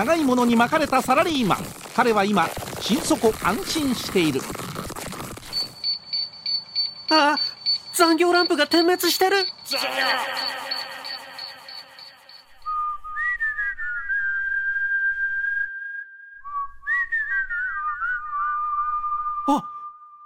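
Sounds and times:
speech: 0.0 - 4.6, 7.1 - 10.6, 19.5 - 19.7
person whistling a clear sliding tune: 10.1 - 20.2.

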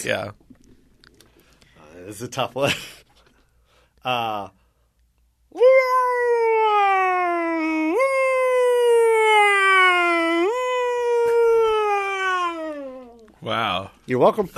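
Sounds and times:
speech: 0.0 - 0.4, 2.0 - 3.0, 4.0 - 4.6, 5.5 - 6.6, 13.4 - 14.5
person vocally imitating a US ambulance siren from Los Angeles: 5.6 - 13.3.

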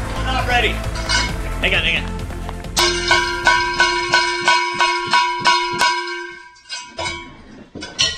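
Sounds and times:
cowbell being struck: 0.2 - 1.4, 2.8 - 7.2
speech: 0.6 - 2.2, 2.8 - 3.7.

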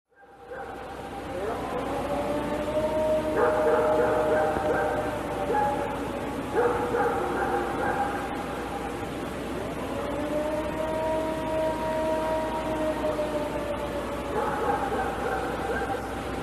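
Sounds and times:
long low moaning tone: 0.1 - 16.4
dog barking: 0.2 - 0.9, 3.4 - 8.4, 14.3 - 16.1.

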